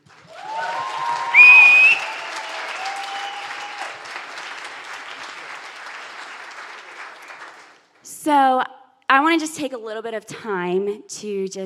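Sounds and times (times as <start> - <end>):
people cheering: 0.0 - 7.7
audience applause: 0.0 - 8.0
loud shrill whistle from a crowd: 0.5 - 3.8
speech: 9.3 - 11.6.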